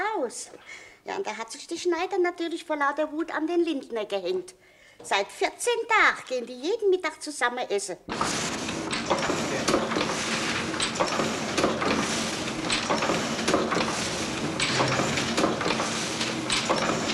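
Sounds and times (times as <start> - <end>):
speech: 0.3 - 9.8
printing press running off advertising slips for a department store: 8.1 - 17.1
sharp knocks of a printing press: 8.1 - 17.1.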